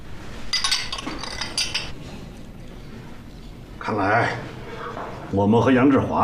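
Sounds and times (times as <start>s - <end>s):
glasses clinking in a toast: 0.5s - 2.0s
speech: 3.9s - 4.6s, 5.3s - 6.2s.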